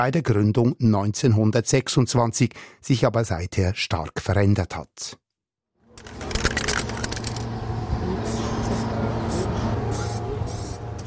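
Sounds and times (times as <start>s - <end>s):
speech: 0.0s - 5.2s
low hum: 5.9s - 11.0s
spray paint can spraying a gymnasium wall for a mural: 6.2s - 7.4s, 8.2s - 11.0s.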